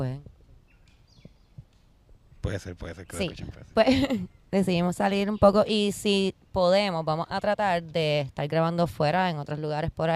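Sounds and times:
faint bird chirps outdoors: 0:00.0 - 0:08.1
speech: 0:02.4 - 0:10.1
laughter: 0:03.8 - 0:04.3.

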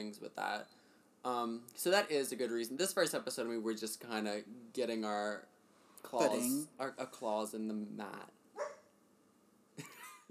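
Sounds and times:
speech: 0:00.0 - 0:08.4, 0:09.8 - 0:10.2
dog barking: 0:08.6 - 0:08.9.

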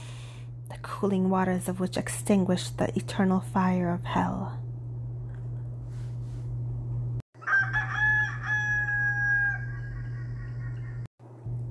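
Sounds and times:
steady low hum: 0:00.0 - 0:07.2, 0:09.6 - 0:11.6
speech: 0:00.7 - 0:04.6
rooster crowing: 0:07.4 - 0:11.1.

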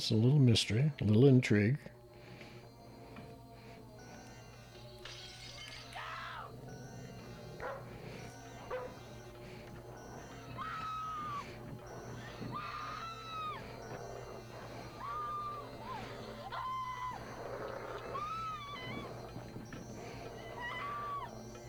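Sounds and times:
speech: 0:00.0 - 0:02.0
high cries: 0:02.1 - 0:21.6
aggressive dog barking and snarling: 0:06.0 - 0:19.4.

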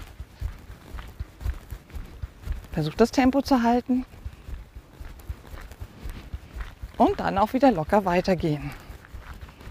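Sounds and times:
soft footsteps of a person walking on the balls of the feet: 0:00.0 - 0:09.6
speech: 0:02.8 - 0:04.1, 0:07.0 - 0:08.8.

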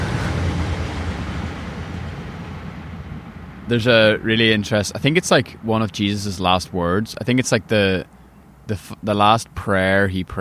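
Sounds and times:
train passing: 0:00.0 - 0:07.9
speech: 0:03.7 - 0:10.4.

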